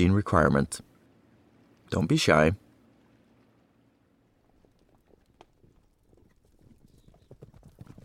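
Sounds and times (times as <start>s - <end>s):
speech: 0.0s - 0.9s, 1.9s - 2.6s
several horses' hooves clip-clopping on hard ground: 4.4s - 8.0s.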